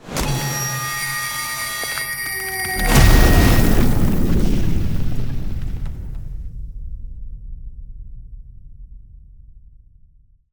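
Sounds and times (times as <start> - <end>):
ice spell explosion impact arctic blast: 2.4 - 6.6.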